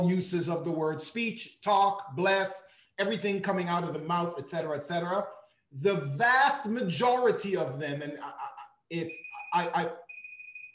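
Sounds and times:
speech: 0.0 - 10.0
timer beeping: 9.0 - 10.7.

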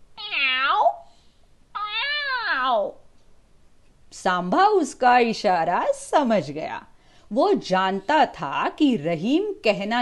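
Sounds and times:
person imitating a cat meow: 0.2 - 1.1, 1.8 - 3.0
speech: 4.2 - 9.9.

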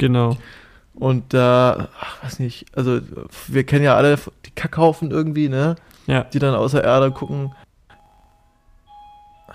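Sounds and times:
speech: 0.0 - 7.6
home doorbell chiming a two-tone ding-dong: 7.1 - 9.5.

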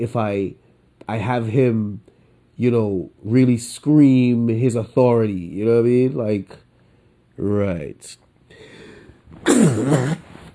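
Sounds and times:
speech: 0.0 - 6.6, 7.4 - 8.7, 9.3 - 10.3
sneeze: 9.3 - 10.4.

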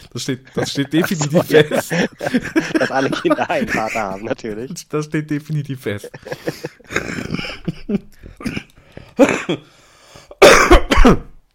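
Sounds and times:
speech: 0.1 - 8.6, 9.2 - 9.8, 11.0 - 11.3
laughter: 0.4 - 4.8, 5.7 - 8.4
person coughing into the microphone: 6.9 - 9.7, 10.4 - 11.4
person clearing throat into the microphone: 8.3 - 9.6, 10.4 - 11.4.

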